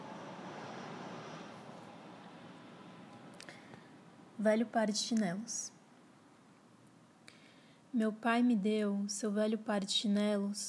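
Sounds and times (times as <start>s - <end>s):
airplane engine roaring overhead: 0.0s - 4.4s
speech: 4.4s - 5.8s, 8.0s - 10.6s.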